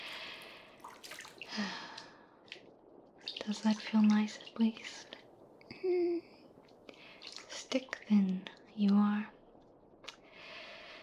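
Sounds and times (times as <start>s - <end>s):
water drips and splashes: 0.0s - 5.6s, 6.5s - 10.5s
water trickling down skin during a bath: 0.0s - 9.1s
speech: 3.4s - 5.1s, 7.8s - 9.3s.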